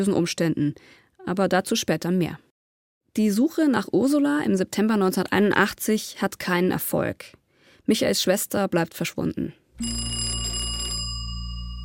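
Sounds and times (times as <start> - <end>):
speech: 0.0 - 2.5, 3.2 - 10.4
bright metallic telephone bell ringing: 9.8 - 11.8.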